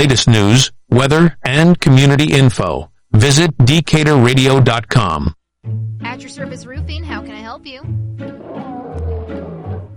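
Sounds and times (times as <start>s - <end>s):
speech: 0.0s - 8.7s
lion roaring: 8.3s - 9.9s.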